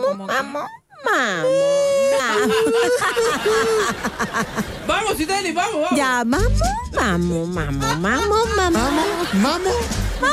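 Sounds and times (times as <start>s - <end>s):
adult voice imitating a whimpering baby: 0.0s - 2.4s
speech: 0.2s - 10.3s
laughter: 1.9s - 5.2s, 7.6s - 10.3s.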